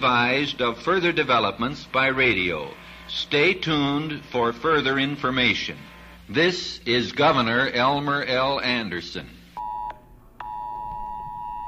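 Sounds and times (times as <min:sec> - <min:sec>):
speech: 0:00.0 - 0:09.4
phone emergency alert beeping during an alert test: 0:09.6 - 0:11.6.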